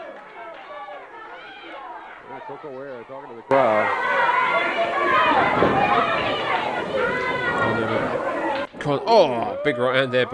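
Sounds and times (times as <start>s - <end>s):
wrestling arena crowd jeering and shouting: 0.0s - 10.3s
speech: 2.3s - 10.3s.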